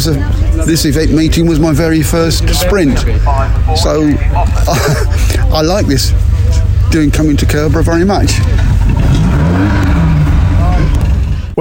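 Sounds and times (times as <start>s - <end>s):
speech: 0.0s - 6.3s, 6.9s - 9.8s
MG3 car engine revving at an MG Car Club motorsport sprint: 0.0s - 11.5s
laughter: 2.4s - 6.7s.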